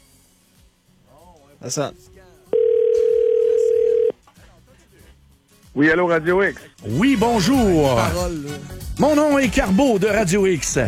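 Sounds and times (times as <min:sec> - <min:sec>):
speech: 0:01.6 - 0:02.2, 0:05.8 - 0:10.8
telephone ringing tone on an outgoing call: 0:02.5 - 0:04.1.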